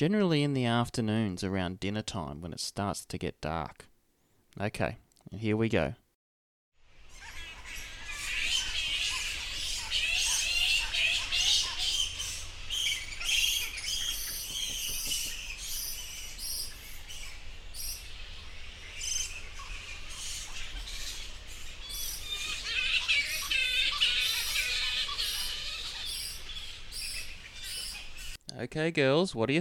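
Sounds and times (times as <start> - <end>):
speech: 0.0 - 3.9, 4.6 - 6.0, 28.6 - 29.5
many bats squeaking and screeching at night: 7.1 - 28.4.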